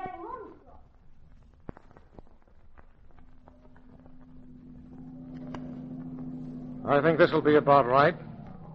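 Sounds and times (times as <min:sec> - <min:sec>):
car engine humming while backing up to park: 0:02.7 - 0:08.7
speech: 0:06.9 - 0:08.3.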